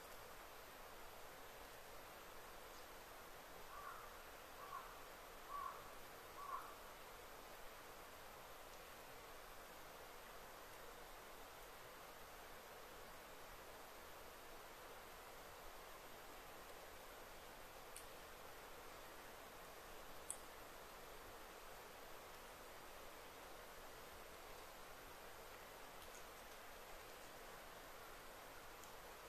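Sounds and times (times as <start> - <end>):
soft steady hiss of air and leaves in a deep forest: 0.0 - 29.2
small ticks: 2.7 - 2.9, 8.6 - 8.9, 17.8 - 18.2, 20.2 - 20.6, 25.4 - 27.5, 28.6 - 29.1
faint bird chirps: 3.7 - 6.8.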